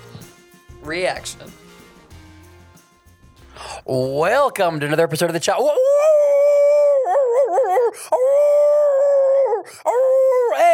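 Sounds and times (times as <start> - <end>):
speech: 0.8 - 1.6, 3.8 - 6.3, 7.6 - 8.6
person imitating a wolf howling: 5.6 - 10.7.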